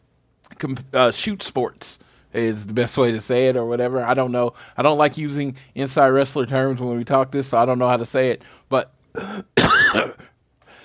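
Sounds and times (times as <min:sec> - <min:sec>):
speech: 0:00.6 - 0:10.2
cough: 0:09.2 - 0:10.4.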